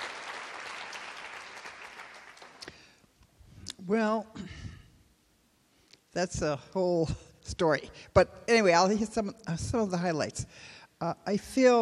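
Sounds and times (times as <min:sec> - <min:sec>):
audience applause: 0:00.0 - 0:02.6
louder individual claps: 0:00.0 - 0:02.8
speech: 0:03.9 - 0:04.6, 0:06.2 - 0:11.8.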